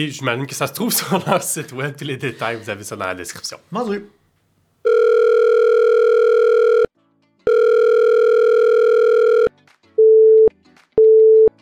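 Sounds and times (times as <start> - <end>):
speech: 0.0 - 4.2
telephone line ringback tones before voicemail: 4.8 - 6.9, 7.5 - 11.5.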